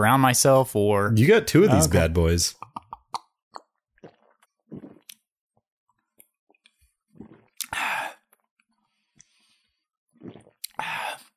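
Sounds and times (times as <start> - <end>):
speech: 0.0 - 2.6
person gulping a drink from a bottle: 2.6 - 5.3, 7.1 - 8.5, 10.1 - 10.9.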